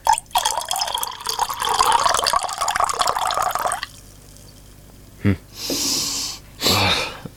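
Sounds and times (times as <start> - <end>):
wine pouring into a glass: 0.0 - 4.0
person sniffing: 5.5 - 7.2.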